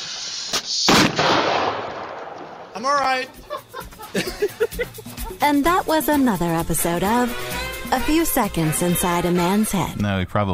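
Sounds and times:
firework hissing crackling burst: 0.0s - 1.8s
firework lit with a lighter cracking: 0.0s - 3.2s
speech: 2.8s - 10.5s
laughter: 3.1s - 5.9s.

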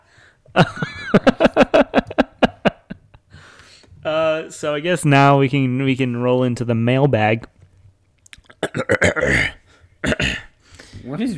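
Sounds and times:
speech: 0.5s - 1.3s, 4.6s - 7.5s
laughter: 0.6s - 3.2s
throat clearing with guttural bursts and rasp: 8.5s - 10.6s.

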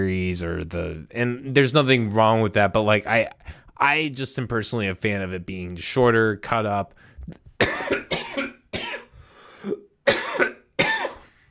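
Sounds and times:
speech: 0.0s - 8.1s
person coughing harshly in a fit: 7.6s - 11.4s.

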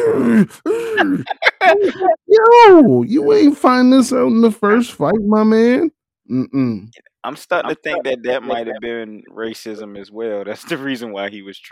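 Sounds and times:
man imitating a boxer wheezing and breathing hard: 0.0s - 2.1s
speech: 0.1s - 11.7s
laughter: 0.7s - 2.2s, 7.6s - 9.0s.

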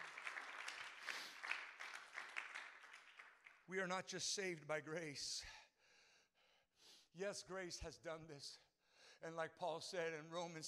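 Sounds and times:
crowd applauding: 0.0s - 3.7s
speech: 3.7s - 5.6s, 7.2s - 10.6s.

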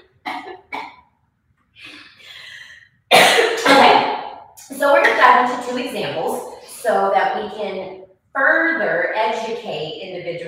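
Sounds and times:
person coughing after choking on a sip of water: 0.3s - 0.9s, 3.1s - 4.0s
speech: 4.8s - 10.4s.

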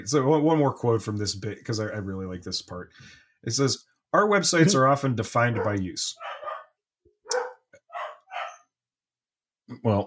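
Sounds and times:
speech: 0.0s - 6.4s, 9.7s - 10.0s
dogs barking: 5.5s - 8.7s.

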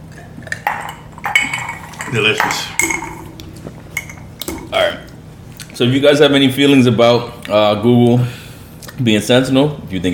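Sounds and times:
low hum: 0.0s - 10.1s
glasses clinking together in a toast: 0.2s - 5.0s
speech: 2.1s - 3.2s, 5.8s - 8.4s, 9.0s - 10.1s.

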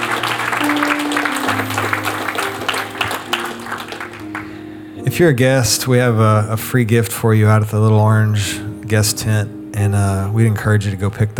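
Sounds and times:
large crowd applause: 0.0s - 4.8s
sustained keyboard or organ chords: 0.0s - 10.7s
speech: 5.2s - 11.3s.

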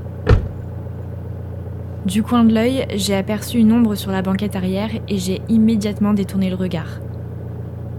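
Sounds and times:
low steady engine hum: 0.0s - 7.9s
car door shutting: 0.2s - 0.7s
speech: 2.0s - 7.1s.

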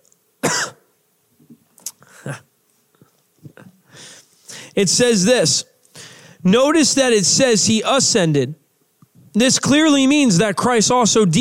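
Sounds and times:
person coughing: 0.4s - 0.9s
speech: 2.2s - 2.5s, 4.8s - 5.7s, 6.4s - 8.6s, 9.3s - 11.4s
faint breathing: 3.8s - 4.8s, 5.9s - 6.4s.

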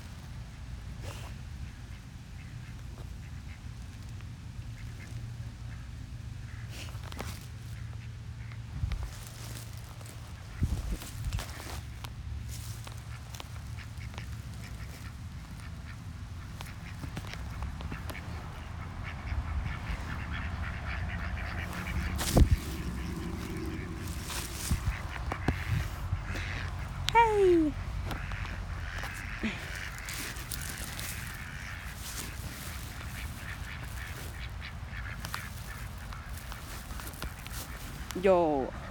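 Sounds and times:
outdoor noise: 0.0s - 38.8s
duck quacking: 13.0s - 38.8s
speech: 38.2s - 38.8s.

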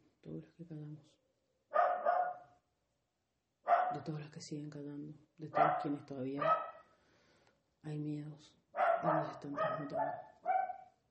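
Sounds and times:
speech: 0.4s - 1.3s, 3.9s - 6.6s, 7.8s - 10.3s
dogs barking in short hoarse bursts: 1.7s - 2.5s, 3.7s - 4.0s, 5.6s - 6.8s, 8.8s - 11.0s.

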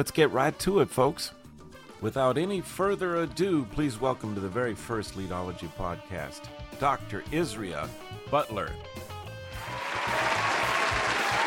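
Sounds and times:
speech: 0.0s - 1.4s, 2.0s - 9.1s
audience applauding: 9.6s - 11.4s.

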